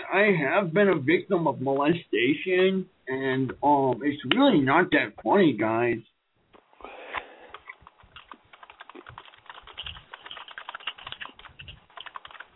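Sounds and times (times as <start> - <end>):
speech: 0.1 - 6.1
fast forceful angry typing on a computer keyboard: 7.5 - 12.5.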